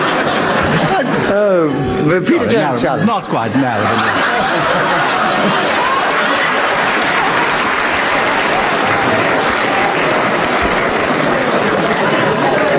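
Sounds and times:
crowd murmur: 0:00.0 - 0:12.7
laughter: 0:00.0 - 0:12.7
speech: 0:01.3 - 0:05.9
live audience applause: 0:04.0 - 0:12.7.

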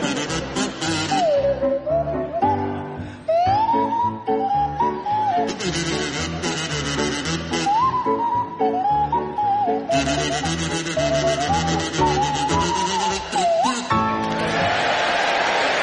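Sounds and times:
kazoo playing a jaunty tune: 0:00.0 - 0:01.6, 0:05.2 - 0:08.1, 0:09.9 - 0:14.2
full musical backing: 0:00.0 - 0:15.7.

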